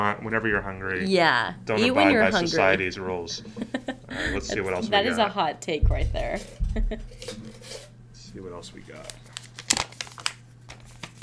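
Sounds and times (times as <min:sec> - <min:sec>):
laughter: 0:00.0 - 0:07.6
speech: 0:00.0 - 0:07.8, 0:08.4 - 0:09.2
faint steady hum: 0:00.0 - 0:11.2
handwritten paper slips crinkling as they are unfolded and handled: 0:08.5 - 0:11.2.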